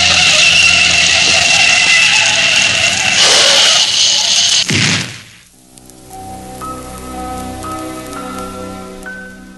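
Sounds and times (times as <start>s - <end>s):
quiet sustained tones: 0.0s - 3.9s
loud roaring rush of noise of bus before crash: 0.0s - 5.6s.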